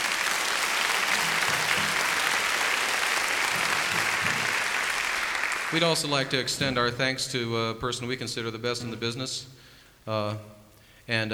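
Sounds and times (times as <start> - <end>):
sustained applause from a sizable audience: 0.0 - 7.3
speech: 5.7 - 11.3.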